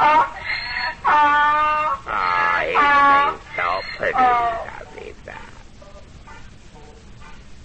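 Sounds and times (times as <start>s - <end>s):
person imitating donkey braying: 0.0s - 5.6s.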